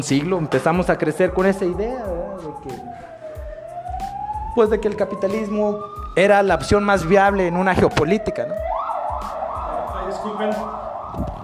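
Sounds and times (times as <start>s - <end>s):
speech: 0.0s - 3.2s, 4.6s - 8.7s, 10.2s - 11.4s
ambulance siren wailing: 0.0s - 11.4s.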